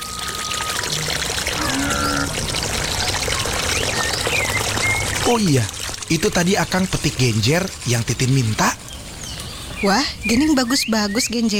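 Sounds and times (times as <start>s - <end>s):
water poured over hands during hand washing: 0.0s - 8.8s
speech: 5.3s - 8.8s, 9.8s - 11.5s.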